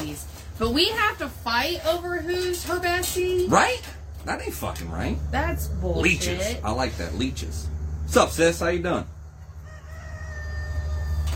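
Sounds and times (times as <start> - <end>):
speech: 0.2 - 9.1
rooster crowing: 9.2 - 11.3.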